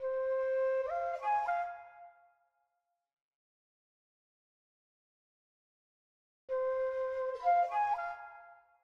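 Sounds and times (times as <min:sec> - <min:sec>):
flute in A# minor: 0:00.0 - 0:02.6, 0:06.5 - 0:08.8.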